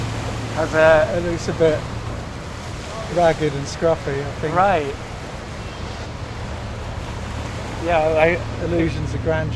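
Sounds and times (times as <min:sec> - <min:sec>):
large boat engine rumbling on a river: 0:00.0 - 0:09.5
speech: 0:00.6 - 0:02.0, 0:03.1 - 0:05.1, 0:07.8 - 0:09.5.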